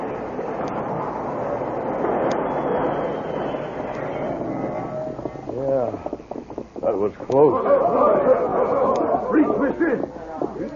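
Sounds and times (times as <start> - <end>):
train braking to a stop: 0.0 - 5.5
speech: 6.9 - 8.7, 9.3 - 10.7
laughter: 7.4 - 10.1.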